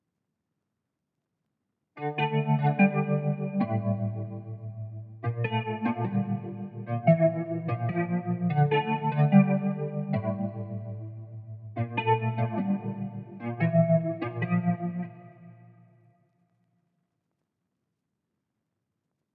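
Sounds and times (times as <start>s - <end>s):
guitar melody loop in D minor: 2.0s - 15.6s.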